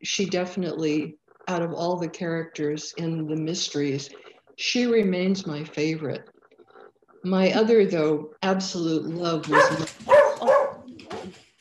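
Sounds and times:
speech: 0.0 - 6.3, 7.2 - 10.6
Australian cattle dog barking: 9.5 - 11.3.

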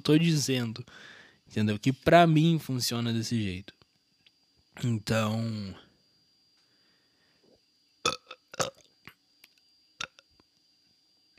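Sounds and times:
speech: 0.0 - 3.8, 4.8 - 5.8
small soft burp: 8.0 - 9.2, 10.0 - 10.3
faint clicky mouth noises: 8.3 - 10.5.

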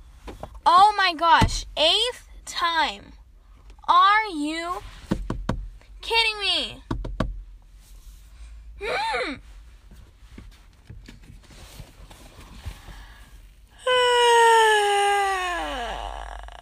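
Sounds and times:
speech: 0.7 - 3.2, 3.9 - 5.0, 6.0 - 6.9, 8.8 - 9.5
faint rustling: 9.4 - 13.6
person yawning loudly: 13.8 - 16.6.

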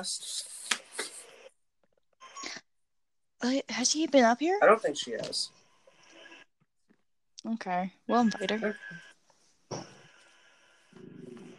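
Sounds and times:
speech: 0.0 - 0.6, 3.4 - 5.6, 7.4 - 9.1
dog growling: 10.9 - 11.5.

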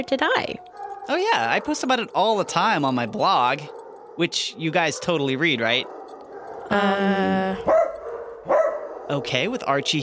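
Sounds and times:
speech: 0.0 - 6.0, 6.7 - 7.8, 9.1 - 10.0
dog barking: 0.6 - 6.7, 7.6 - 10.0.

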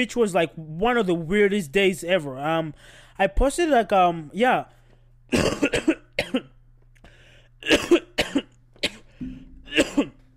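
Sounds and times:
speech: 0.0 - 6.5, 7.6 - 8.1
low steady hum: 0.0 - 10.3
harsh coughing: 5.3 - 6.6, 7.6 - 10.3.

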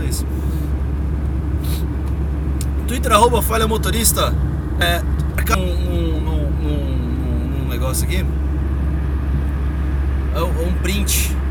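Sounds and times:
car interior rumble while driving: 0.0 - 11.4
speech: 0.1 - 0.4, 2.9 - 6.1, 7.7 - 8.4, 10.4 - 11.4.

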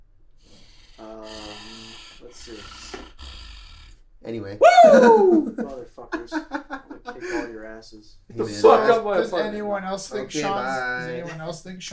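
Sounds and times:
heavy breathing with snort-like exhale: 0.4 - 4.0, 7.2 - 7.6
speech: 2.4 - 3.0, 4.2 - 6.6, 7.2 - 11.9
laughter: 4.6 - 7.7.

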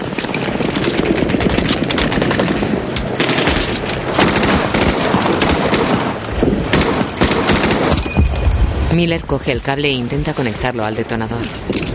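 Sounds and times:
heavy automatic gunfire across a river: 0.0 - 8.1
speech: 9.0 - 11.8.

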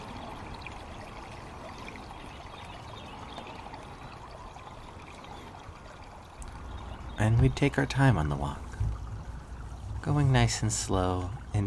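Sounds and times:
creek water gurgling: 6.4 - 11.6
speech: 7.3 - 8.7, 10.1 - 11.6.

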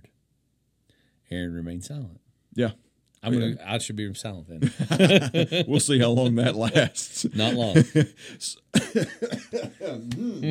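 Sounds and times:
speech: 1.3 - 10.5
laughter: 4.6 - 10.5
person coughing: 8.8 - 10.4.

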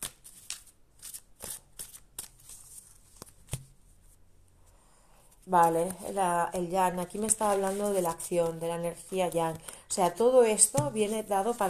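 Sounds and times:
oracle cards being shuffled by hand: 0.0 - 3.7, 7.1 - 11.6
speech: 5.5 - 11.6.

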